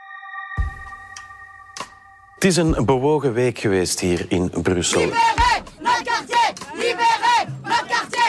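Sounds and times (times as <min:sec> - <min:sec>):
speech: 0:02.4 - 0:05.8
crowd of protesters shouting a rhythmic chant in unison: 0:04.8 - 0:08.2.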